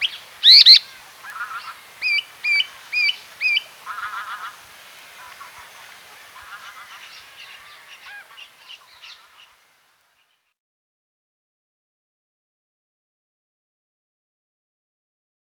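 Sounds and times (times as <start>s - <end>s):
softer chattering bird calls: 0.0s - 9.6s
common woodshrike short clear up-slurred whistled notes: 0.4s - 0.8s.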